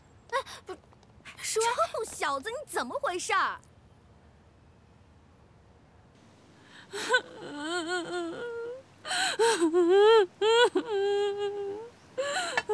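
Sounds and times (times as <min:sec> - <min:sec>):
speech: 0:01.5 - 0:03.7, 0:07.0 - 0:08.4, 0:09.4 - 0:12.6
person crying: 0:06.9 - 0:12.7.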